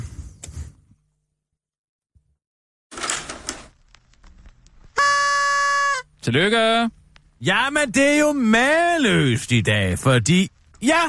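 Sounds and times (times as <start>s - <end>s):
burst of broadband noise: 3.0s - 11.0s
loud steady horn blast: 5.0s - 6.1s
speech: 6.2s - 11.0s.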